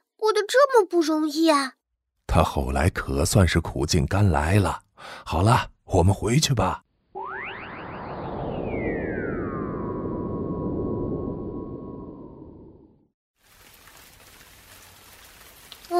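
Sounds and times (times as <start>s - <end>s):
speech: 0.2s - 6.8s
swooping descending electronic whoosh: 7.1s - 13.1s
steady rain falling outside: 13.4s - 15.9s.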